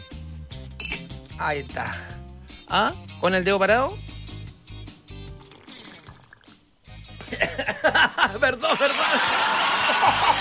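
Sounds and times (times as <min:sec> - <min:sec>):
speech: 0:01.4 - 0:02.1, 0:02.7 - 0:04.1, 0:07.4 - 0:10.3
wet slurping and gulping of water: 0:05.4 - 0:06.6
laughter: 0:07.2 - 0:10.3.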